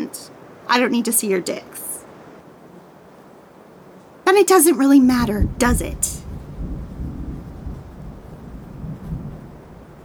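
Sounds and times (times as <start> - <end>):
speech: 0.1 - 1.9, 4.4 - 6.1
thunder rumbling: 5.0 - 10.0.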